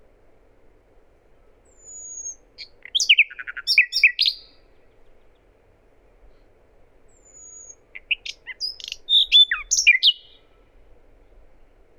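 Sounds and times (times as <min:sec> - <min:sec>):
common nightingale Luscinia megarhynchos song: 0:01.3 - 0:05.6, 0:07.1 - 0:10.8.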